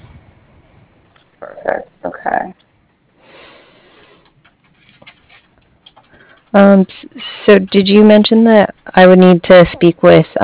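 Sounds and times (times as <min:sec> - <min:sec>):
keys tapped on a computer keyboard: 0:04.0 - 0:06.7, 0:07.5 - 0:10.1
speech: 0:06.6 - 0:10.4.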